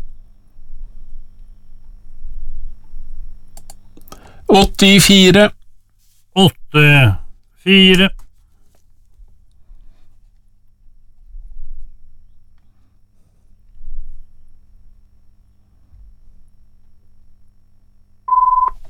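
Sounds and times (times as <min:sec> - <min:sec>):
speech: 0:04.0 - 0:05.6, 0:06.4 - 0:08.2
telephone electronic ring tone: 0:18.3 - 0:18.8.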